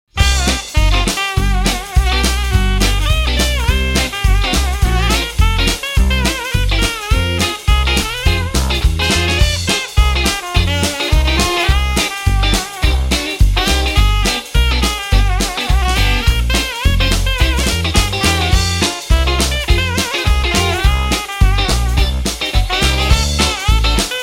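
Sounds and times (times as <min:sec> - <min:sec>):
saxophone: 0:00.1 - 0:24.2.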